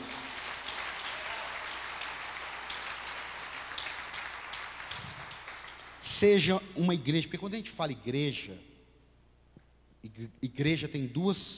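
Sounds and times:
crowd applauding: 0.0s - 6.0s
speech: 6.1s - 8.7s, 10.1s - 11.5s.

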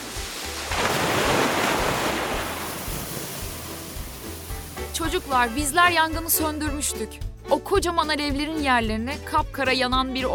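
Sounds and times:
water spraying out in a broad rushing hiss: 0.0s - 6.2s
speech: 5.0s - 10.3s.

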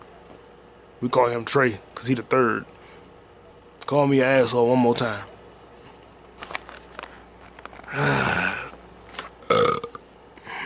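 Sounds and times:
speech: 1.0s - 2.8s, 3.9s - 5.3s
quiet shuffling noises: 5.7s - 7.9s
loud drawn-out burp: 7.9s - 8.8s, 9.4s - 10.0s.

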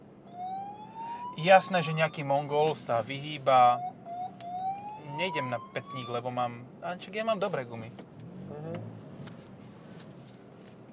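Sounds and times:
ambulance siren wailing in traffic: 0.2s - 6.5s
speech: 1.4s - 3.9s, 5.2s - 8.6s.

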